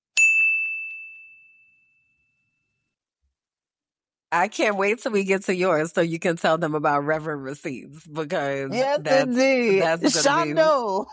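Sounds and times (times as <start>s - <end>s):
single bright bell ding: 0.1s - 2.9s
speech: 4.3s - 11.1s.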